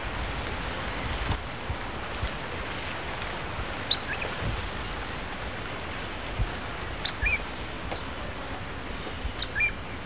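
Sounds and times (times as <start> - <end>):
background hiss: 0.0 - 10.0
groove-billed ani giving short high two-part calls at Mitchell Lake: 7.0 - 7.4, 9.4 - 9.8.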